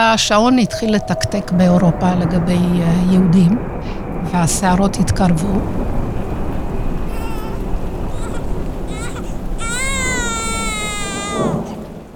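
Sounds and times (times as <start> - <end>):
speech: 0.0 - 5.9
steady rumble like rain: 0.0 - 12.1
newborn baby crying: 7.1 - 11.8.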